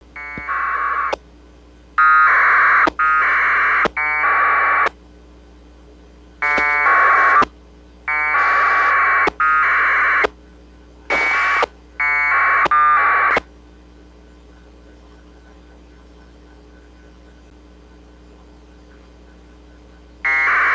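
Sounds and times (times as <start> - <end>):
APRS radio data packet on 144390 MHz: 0.2 - 1.2, 2.0 - 5.0, 6.4 - 7.5, 8.1 - 10.4, 11.0 - 13.5, 14.4 - 20.7.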